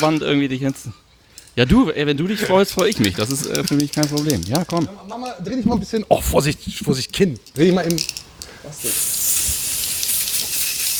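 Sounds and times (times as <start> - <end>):
speech: 0.0 - 1.0, 1.6 - 9.3
hairspray sprayed from an aerosol can onto hair: 8.8 - 10.9.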